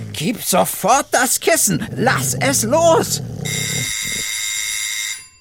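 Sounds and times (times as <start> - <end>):
speech: 0.2 - 3.3
electric doorbell at a house's front door buzzing: 3.5 - 5.4.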